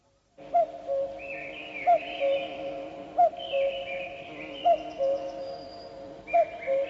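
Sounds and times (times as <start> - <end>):
common cuckoo calling its two-note cu-koo: 0.4 - 6.8
other birds chirping and warbling faintly: 0.4 - 6.8.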